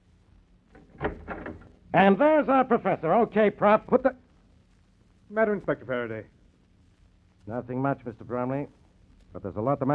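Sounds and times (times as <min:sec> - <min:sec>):
door flung open with a clatter: 0:00.8 - 0:01.8
speech: 0:02.0 - 0:04.2, 0:05.3 - 0:06.4, 0:07.4 - 0:09.9.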